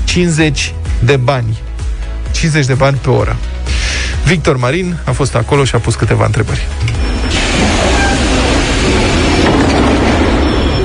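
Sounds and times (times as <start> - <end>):
speech: 0.1 - 1.7, 2.4 - 3.5, 4.3 - 7.9
metro train rumbling at a terminus metro station: 6.8 - 10.8.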